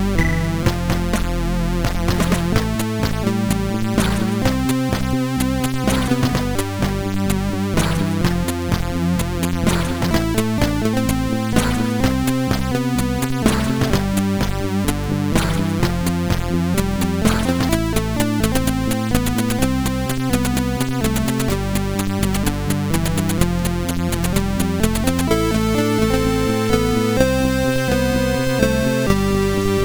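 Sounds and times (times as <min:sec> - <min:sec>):
MOS6581 SID chip synthesizer sound: 0:00.2 - 0:29.8.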